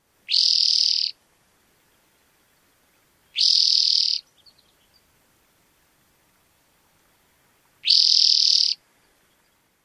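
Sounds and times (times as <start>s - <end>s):
Spotted Towhee songs: 0.2s - 1.2s, 1.8s - 5.1s, 7.8s - 9.7s.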